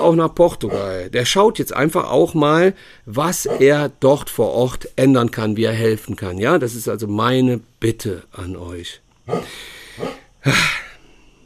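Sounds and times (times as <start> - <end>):
speech: 0.0 - 10.8
large old dog giving deep rough barks: 0.7 - 1.0, 3.4 - 3.7, 9.3 - 10.2.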